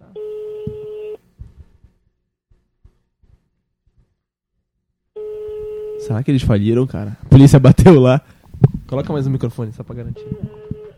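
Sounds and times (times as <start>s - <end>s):
telephone line tone on a call to a pizza place: 5.2s - 6.2s, 10.2s - 10.9s
speech: 6.1s - 10.6s.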